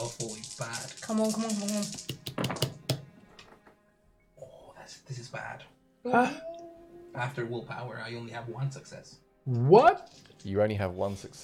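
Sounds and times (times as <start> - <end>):
speech: 0.0 - 2.1, 5.3 - 6.5, 7.2 - 11.4
dice rolled onto a hard tabletop: 0.0 - 3.1.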